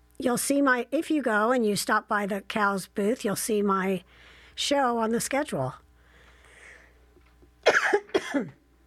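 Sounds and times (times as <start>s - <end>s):
speech: 0.2s - 5.8s, 8.3s - 8.6s
harsh coughs: 7.6s - 8.6s.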